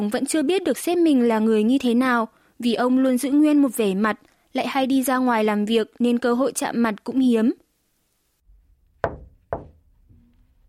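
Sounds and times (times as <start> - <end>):
speech: 0.0 - 7.6
man knocking sharply on a boss's office door: 9.0 - 9.9.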